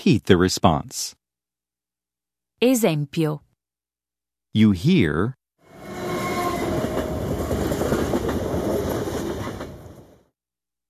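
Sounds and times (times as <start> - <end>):
speech: 0.0 - 1.2, 2.6 - 3.4, 4.5 - 5.4
train rumbling past: 5.6 - 10.3.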